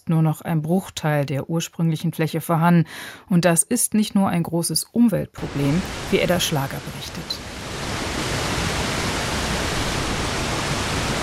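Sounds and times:
speech: 0.1 - 7.6
water rushing through a dam weir: 5.4 - 11.2.

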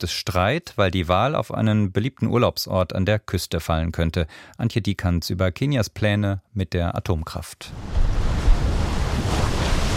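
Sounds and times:
speech: 0.0 - 8.3
Indian Ocean waves breaking against a steep cliff on the Kenyan coast: 7.7 - 9.9
rushing wind: 7.7 - 9.9.

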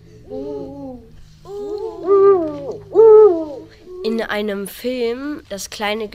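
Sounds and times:
Eurasian eagle-owl hooting call: 0.3 - 4.1
speech: 4.0 - 6.1.

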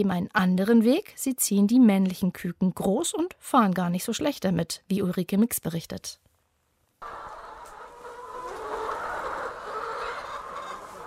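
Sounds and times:
speech: 0.0 - 6.3
many laying hens clucking and cackling: 7.0 - 11.0.

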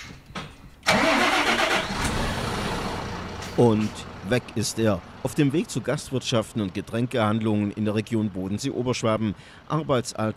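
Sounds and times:
18-ton beer delivery truck diesel engine starting and idling: 0.8 - 10.2
speech: 3.6 - 10.3.

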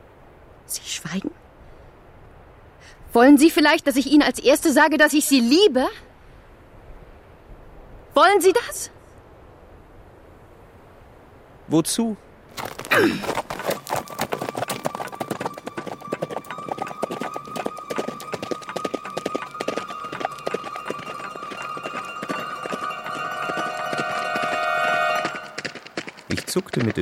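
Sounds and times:
speech: 0.7 - 1.4, 3.2 - 6.1, 8.2 - 9.0, 11.7 - 13.5, 26.6 - 27.0
horse galloping along a narrow road: 12.5 - 27.0.

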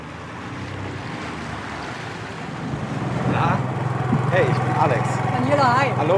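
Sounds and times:
rush of water wash from floating kiosk raft on the Havel river: 0.0 - 6.1
wind buffeting the microphone: 1.7 - 6.1
speech: 4.8 - 6.1.

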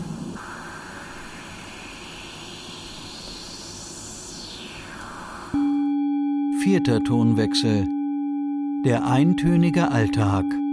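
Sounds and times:
broadband noise through a resonant filter with a whistling sweeping band: 0.0 - 6.0
speech: 6.6 - 8.0, 8.8 - 10.6.

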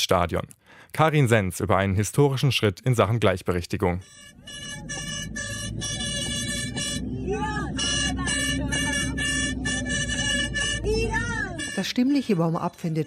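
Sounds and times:
speech: 0.0 - 5.9, 7.2 - 7.9, 11.8 - 13.0
plastic horns tooting in a minibus: 4.0 - 12.4
low minibus engine rumble: 4.0 - 13.0
voices calling out: 4.0 - 13.0.

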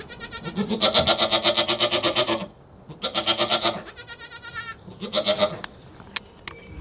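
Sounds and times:
dairy goats bleating in a farm stable: 0.0 - 5.7.

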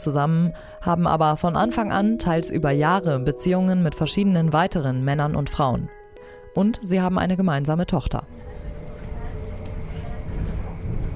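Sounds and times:
speech: 0.0 - 6.0, 6.6 - 8.4
constant mechanical hum of train: 8.2 - 11.1
train rumbling on rails heard from inside in Germany: 8.3 - 11.1.

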